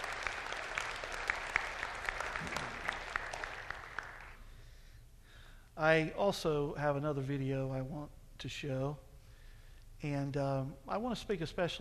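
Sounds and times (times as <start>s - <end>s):
church audience applauding a testimony: 0.0s - 4.4s
speech: 5.8s - 9.1s, 10.0s - 11.8s.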